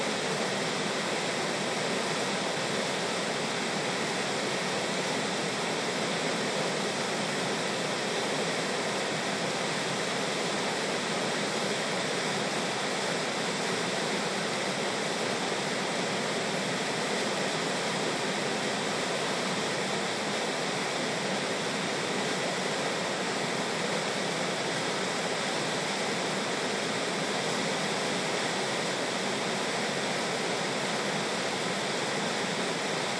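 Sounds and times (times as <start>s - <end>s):
Clark Fork River rushing in downtown Missoula Montana: 0.0s - 33.1s.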